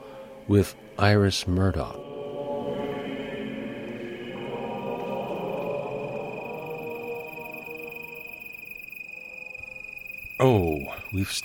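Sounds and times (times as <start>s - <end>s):
speech: 0.5s - 2.0s, 10.4s - 11.4s
low hum: 1.8s - 11.4s
crickets chirping in the main street of a dark town: 2.1s - 11.4s.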